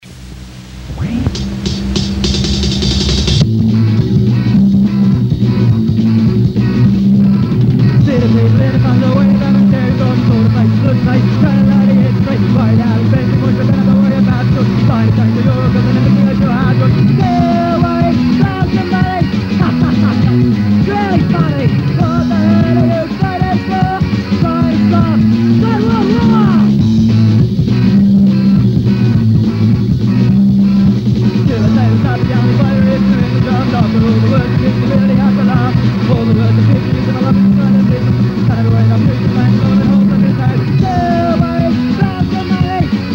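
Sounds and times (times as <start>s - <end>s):
jazz drums: 0.0s - 43.1s
laughter: 19.4s - 20.7s.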